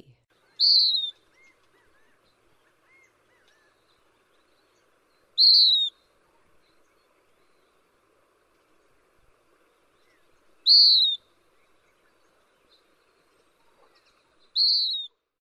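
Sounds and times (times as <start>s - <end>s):
Western Wood-pewee singing: 0.3s - 7.9s, 9.9s - 15.1s.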